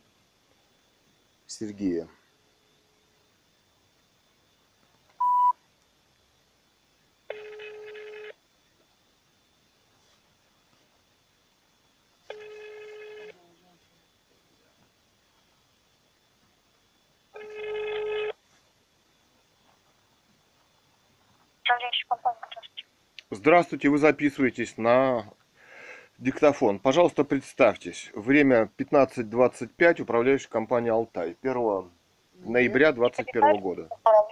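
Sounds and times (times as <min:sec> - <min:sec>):
speech: 0:01.5 - 0:02.2, 0:23.4 - 0:25.4, 0:26.2 - 0:34.2
telephone ringback tone on a repeat call: 0:05.2 - 0:05.5, 0:07.3 - 0:08.4, 0:12.3 - 0:13.4, 0:17.4 - 0:18.4
short beep: 0:05.2 - 0:05.6.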